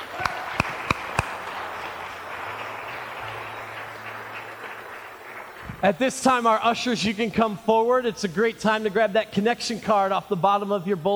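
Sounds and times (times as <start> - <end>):
church audience hand claps: 0.0 - 5.6
soft steady church room noise: 0.0 - 11.1
speech: 5.8 - 11.1.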